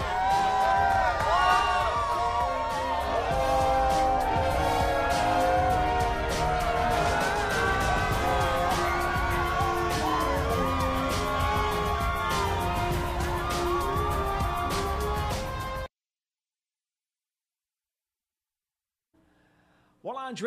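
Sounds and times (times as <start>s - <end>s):
large outdoor crowd of football fans cheering and shouting after a victory: 0.0s - 15.9s.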